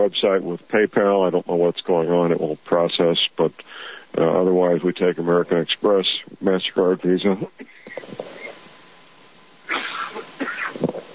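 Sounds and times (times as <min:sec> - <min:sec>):
speech: 0:00.0 - 0:08.3
quiet breathy sounds: 0:03.6 - 0:04.2
person clearing throat with rough coughing: 0:09.7 - 0:11.0.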